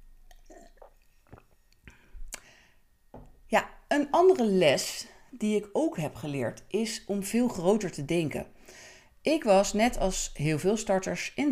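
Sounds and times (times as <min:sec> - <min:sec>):
person swallowing: 0:00.2 - 0:02.5
person sipping a drink: 0:00.2 - 0:02.6
speech: 0:03.5 - 0:11.5.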